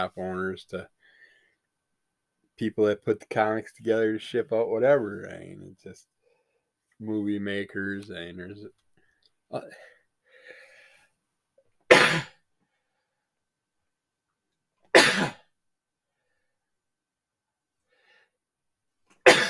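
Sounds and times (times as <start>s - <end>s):
speech: 0.0s - 1.0s, 2.6s - 6.1s, 7.0s - 8.8s, 9.5s - 9.9s
person sneezing: 11.9s - 12.4s, 14.9s - 15.4s, 19.2s - 19.4s.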